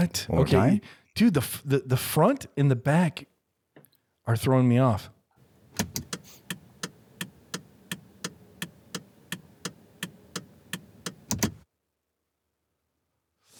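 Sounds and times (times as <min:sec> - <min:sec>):
speech: 0:00.0 - 0:03.3, 0:04.3 - 0:05.2, 0:05.8 - 0:06.1
car turn signal clicking: 0:05.4 - 0:11.6.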